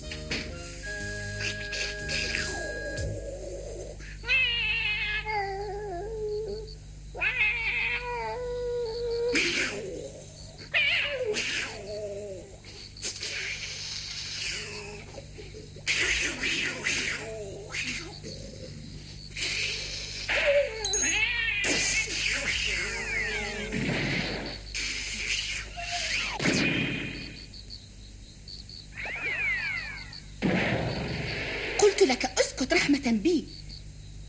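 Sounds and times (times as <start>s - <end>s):
low steady hum: 0.0s - 34.2s
cat meowing and caterwauling late at night: 4.2s - 9.4s, 10.7s - 12.5s.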